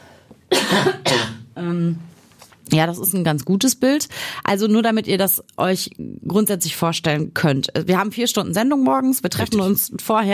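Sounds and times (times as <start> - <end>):
man coughing harshly: 0.5 - 1.5
speech: 0.7 - 2.1, 2.7 - 10.3.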